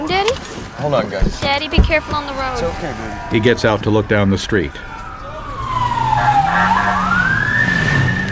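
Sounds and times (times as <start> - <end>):
speech: 0.1 - 4.9
steady low engine rumble: 1.3 - 6.1
police motorcycle siren wailing: 1.6 - 8.3.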